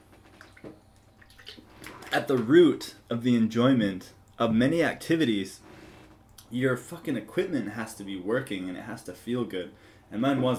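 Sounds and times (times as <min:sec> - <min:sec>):
person sipping water: 0:00.3 - 0:02.2
speech: 0:00.6 - 0:00.8, 0:02.1 - 0:05.6, 0:06.5 - 0:10.5.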